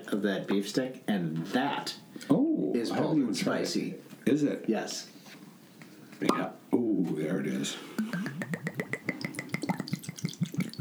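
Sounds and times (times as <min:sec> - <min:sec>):
speech: 0:00.2 - 0:05.2, 0:06.2 - 0:08.0
vodka glugging from a bottle into a glass: 0:07.9 - 0:10.7.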